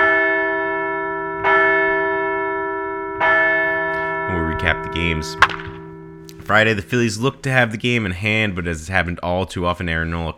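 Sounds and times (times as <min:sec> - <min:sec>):
resonant bell ringing: 0:00.0 - 0:07.4
speech: 0:04.6 - 0:05.7, 0:06.5 - 0:10.3.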